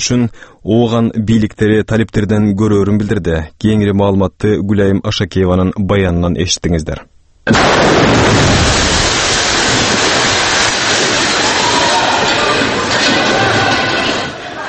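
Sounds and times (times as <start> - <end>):
speech: 0.0 - 8.8
deafening explosion: 7.5 - 14.3.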